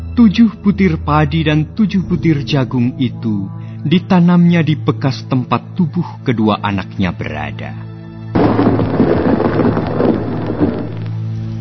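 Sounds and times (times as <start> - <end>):
speech: 0.2 - 7.9
heavy rain falling, ending a long drought: 8.4 - 11.5.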